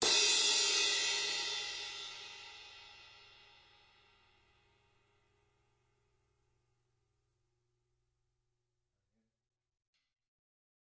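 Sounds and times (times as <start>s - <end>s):
crash cymbal of a real live drum kit: 0.0s - 4.3s.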